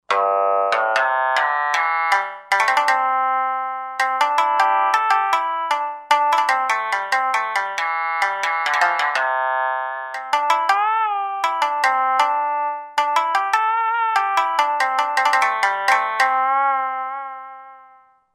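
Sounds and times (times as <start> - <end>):
Jamisen tone on Roland JV-2080 synthesizer: 0.1 - 18.1.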